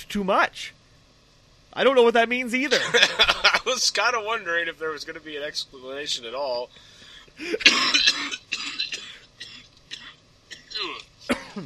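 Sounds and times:
speech: 0.1s - 0.8s, 1.8s - 8.8s, 10.8s - 11.6s
laughter: 2.7s - 3.7s
person coughing: 7.4s - 11.6s
throat clearing: 7.6s - 11.6s.

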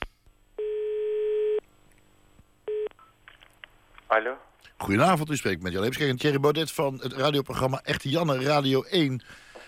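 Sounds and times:
telephone line tone: 0.6s - 1.6s, 2.7s - 2.9s
speech: 4.1s - 9.5s.

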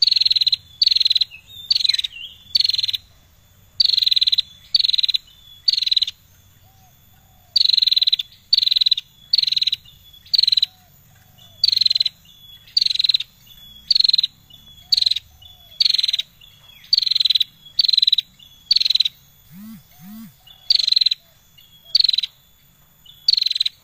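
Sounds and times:
Bar-winged prinia singing persistently: 0.0s - 23.8s
thin steady high tone: 19.4s - 20.5s.

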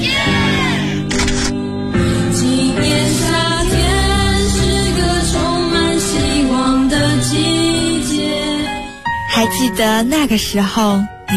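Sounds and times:
steady music: 0.0s - 11.3s
camera shutter clicking for a graduation photo: 1.1s - 1.6s
speech: 9.4s - 11.3s.

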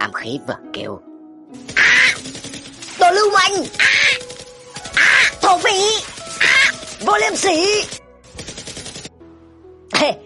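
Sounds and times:
speech: 0.0s - 2.4s, 3.1s - 4.3s, 5.5s - 6.1s, 7.0s - 8.0s, 10.0s - 10.2s
automatic gunfire from an M4A1 rifle: 1.6s - 9.1s.

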